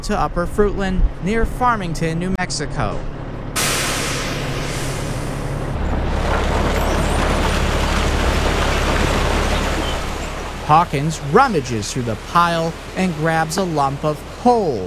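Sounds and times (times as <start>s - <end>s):
speech: 0.0s - 3.2s, 10.7s - 14.8s
20-ton coal truck engine rumbling: 0.0s - 14.8s
20-ton coal truck air brakes hissing: 3.6s - 5.6s.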